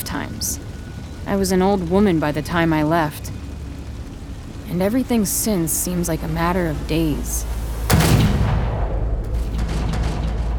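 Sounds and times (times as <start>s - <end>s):
speech: 0.2s - 0.7s, 1.3s - 3.3s, 4.7s - 7.6s
gunshot echoing off iron and glass in a large building: 7.8s - 10.5s.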